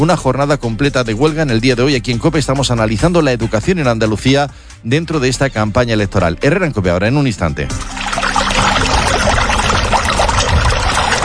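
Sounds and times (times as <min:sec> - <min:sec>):
speech: 0:00.0 - 0:08.3
water being poured: 0:07.6 - 0:11.2.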